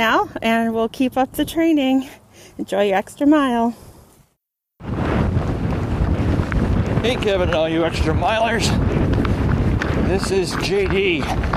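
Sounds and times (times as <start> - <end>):
speech: 0.0 - 3.8, 7.0 - 9.0, 10.1 - 11.5
strong wind blowing against a microphone in South Central Pennsylvania: 4.8 - 11.5.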